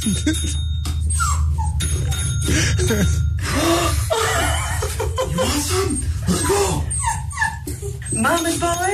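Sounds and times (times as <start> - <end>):
speech: 0.0 - 0.8, 2.5 - 3.8, 5.3 - 6.9, 8.1 - 8.9
steady low hum: 0.0 - 8.9
dog whimpering and whining to go outside: 0.1 - 3.4, 4.1 - 8.9
dog yipping: 1.0 - 2.4, 6.1 - 8.9
laughter: 4.0 - 8.0.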